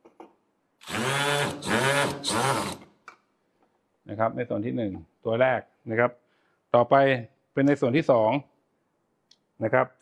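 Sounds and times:
power drill with a Phillips bit driving screws: 0.8s - 3.0s
speech: 4.2s - 8.5s, 9.6s - 10.0s.

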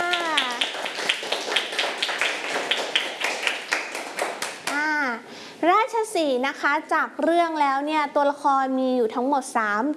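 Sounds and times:
small group of children clapping for a classmate: 0.0s - 4.8s
speech: 6.2s - 9.9s.

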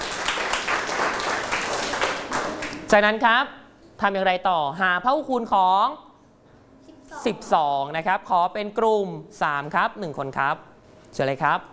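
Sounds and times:
children clapping for a classmate in a classroom: 0.0s - 2.9s
speech: 2.9s - 6.0s, 7.1s - 11.7s.

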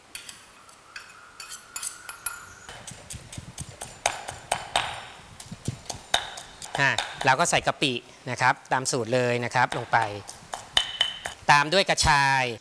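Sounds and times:
pestle pounding Thai curry paste of galangal, lemongrass, garlic and shallots in a mortar: 2.7s - 7.6s, 9.6s - 11.4s
speech: 6.8s - 10.4s, 11.5s - 12.5s.

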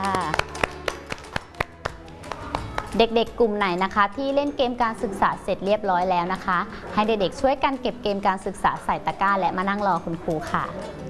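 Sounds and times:
children clapping during a classroom counting lesson: 0.0s - 3.0s
music-like tones: 0.0s - 11.0s
speech: 2.9s - 11.0s.

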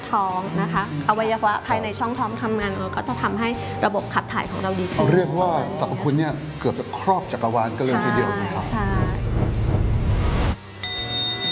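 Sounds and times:
speech: 0.1s - 9.4s
bell ringing: 10.7s - 11.5s.

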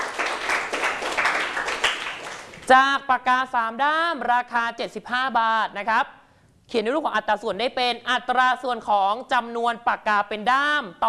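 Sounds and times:
students clapping in a classroom: 0.0s - 2.7s
speech: 2.7s - 11.0s.

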